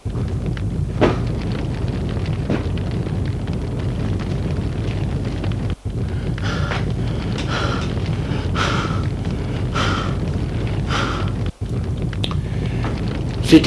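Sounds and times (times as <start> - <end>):
constant low rumble: 0.0 - 13.6
sweating woman panting heavily out of breath while getting back up: 6.1 - 10.3, 10.9 - 11.4.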